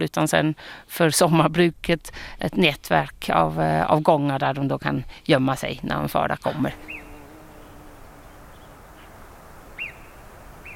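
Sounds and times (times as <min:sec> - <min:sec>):
speech: 0:00.0 - 0:07.0
steady outdoor noise: 0:00.0 - 0:10.7
marmot high-pitched alarm call: 0:06.8 - 0:10.7.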